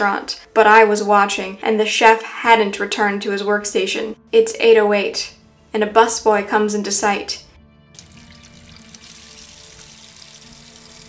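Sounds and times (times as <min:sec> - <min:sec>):
speech: 0:00.0 - 0:07.5
water running from a tap into a pitcher: 0:08.0 - 0:11.0.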